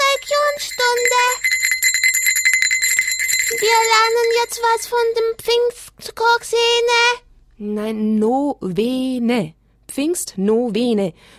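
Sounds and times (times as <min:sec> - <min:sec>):
school bell ringing: 0:00.0 - 0:05.3
speech: 0:03.6 - 0:11.3.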